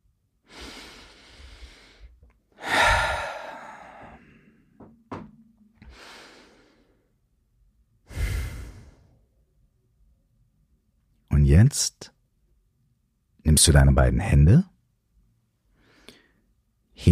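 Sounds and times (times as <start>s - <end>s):
deep slow breathing during a guided meditation: 0.4s - 4.8s, 5.8s - 7.2s, 8.0s - 9.4s, 15.7s - 16.5s
speech: 11.5s - 12.2s, 13.6s - 14.7s, 17.0s - 17.1s.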